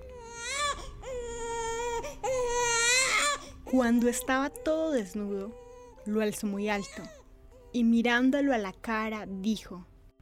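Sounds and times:
baby crying: 0.0s - 7.8s
speech: 3.7s - 9.9s.

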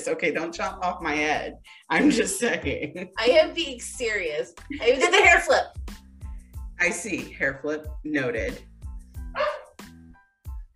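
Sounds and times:
speech: 0.0s - 5.8s, 6.8s - 8.7s
laughter: 1.9s - 3.1s
dog barking: 9.4s - 9.7s.

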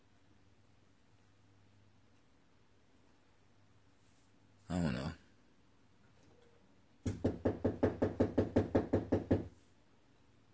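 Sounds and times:
firm knocking on a front door: 7.0s - 9.5s.

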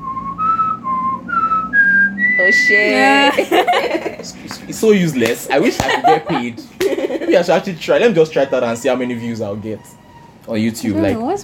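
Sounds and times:
person whistling a tune: 0.0s - 3.2s
speech: 2.4s - 11.4s
laughter: 2.6s - 9.3s.

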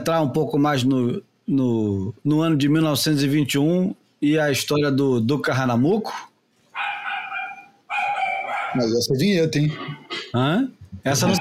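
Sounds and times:
speech: 0.0s - 6.3s, 8.7s - 11.3s
dog barking in drawn-out howling cries: 6.7s - 8.9s.

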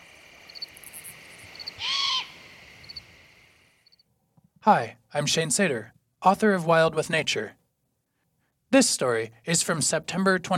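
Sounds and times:
insects droning at night in a forest along the Niobrara River: 0.0s - 4.1s
young great horned owl giving a harsh hissing screech: 1.6s - 3.0s
speech: 4.6s - 7.6s, 8.7s - 10.5s.

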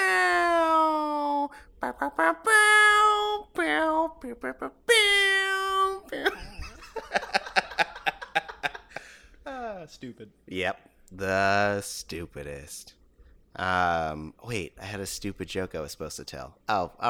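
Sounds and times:
person imitating a cat meowing: 0.0s - 6.2s
rapid choppy vocal noises: 0.0s - 6.4s
speech: 1.8s - 2.6s, 4.2s - 4.9s, 6.1s - 6.6s, 9.9s - 13.0s, 13.6s - 17.0s
laughter-like sounds: 6.2s - 9.2s.

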